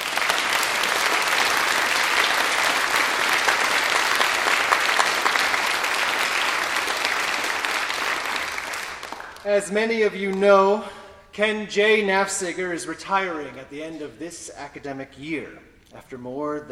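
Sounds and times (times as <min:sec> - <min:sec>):
large audience applauding: 0:00.0 - 0:11.3
speech: 0:09.5 - 0:16.6.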